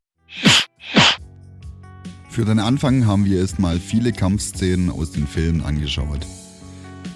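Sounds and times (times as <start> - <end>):
mouth-made imitation of a cartoonish movie fist-punch smack: 0.3 - 1.2
speech: 2.4 - 6.4.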